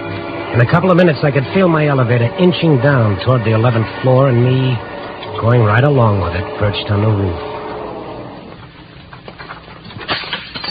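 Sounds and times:
low rumbling background: 0.0 - 10.2
speech: 0.5 - 7.6
glass window shattered by gun butt: 9.4 - 10.6.

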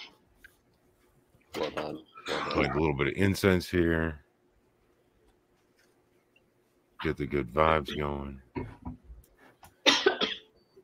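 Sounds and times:
harsh raspy cough: 1.6 - 2.8, 9.8 - 10.5
speech: 1.8 - 4.2, 7.0 - 9.0.

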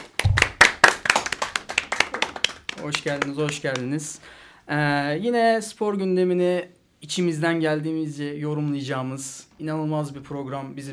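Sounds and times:
small group clapping in a studio control room: 0.0 - 4.1
speech: 2.8 - 10.9.

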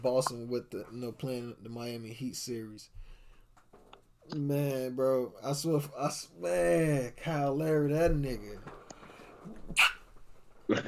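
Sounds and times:
speech: 0.0 - 3.1, 4.3 - 8.8, 9.4 - 10.0, 10.7 - 10.8
sharp sneeze: 9.7 - 10.1.

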